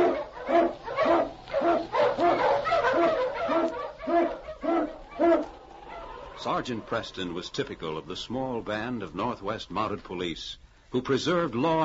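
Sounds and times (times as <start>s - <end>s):
Eskimo lead sled dog barking: 0.0s - 7.0s
speech: 6.4s - 11.8s.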